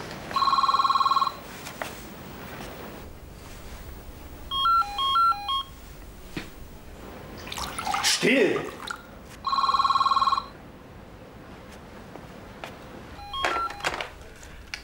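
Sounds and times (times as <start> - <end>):
telephone dialing with stepped dial-tone beeps: 0.3 - 1.4, 4.5 - 5.7, 9.5 - 10.5, 13.2 - 13.9
phone trilling electronic ringing: 0.3 - 1.5, 4.5 - 5.8, 9.4 - 10.6, 13.2 - 14.1.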